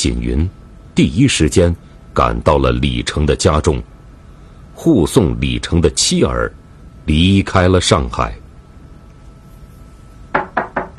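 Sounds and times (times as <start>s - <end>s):
speech: 0.0s - 3.9s, 4.8s - 8.4s
knocking on a door: 10.3s - 10.9s.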